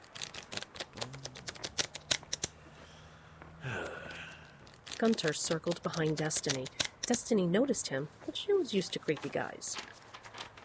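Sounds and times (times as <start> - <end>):
deck of playing cards being shuffled: 0.0 - 2.6, 4.1 - 7.3, 9.0 - 10.6
speech: 5.0 - 9.9.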